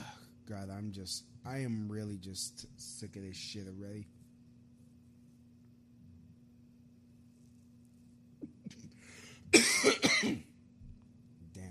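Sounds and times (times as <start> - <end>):
speech: 0.5 - 4.2
harsh coughing: 9.5 - 10.5.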